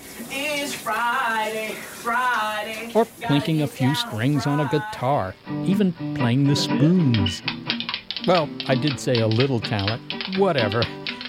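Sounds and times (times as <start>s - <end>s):
shower water running: 0.0s - 5.4s, 6.8s - 11.2s
speech: 0.2s - 7.6s, 8.2s - 11.0s
person singing sustained wavering notes: 0.4s - 7.4s.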